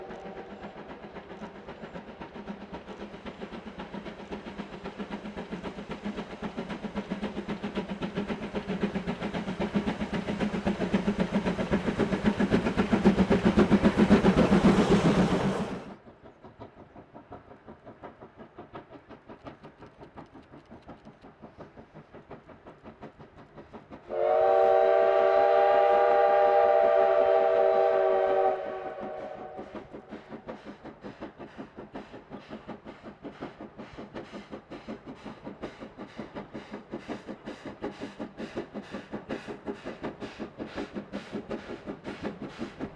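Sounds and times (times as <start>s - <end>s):
steady rhythmic clacking of a steam train: 0.0s - 42.9s
steam train roaring: 0.0s - 42.9s
long bright steam train whistle: 24.1s - 30.0s.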